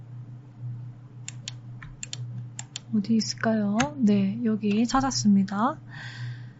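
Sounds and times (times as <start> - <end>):
steady low hum: 0.0 - 6.5
computer keyboard and mouse clicks: 1.3 - 2.9, 4.6 - 5.2
speech: 2.9 - 6.2.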